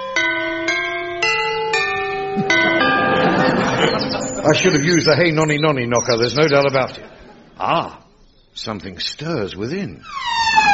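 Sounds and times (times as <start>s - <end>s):
large gatehouse bell rung by rope: 0.0s - 5.6s
laughter: 2.3s - 5.5s, 6.2s - 8.0s
speech: 2.4s - 2.8s, 3.5s - 8.0s, 8.6s - 10.7s.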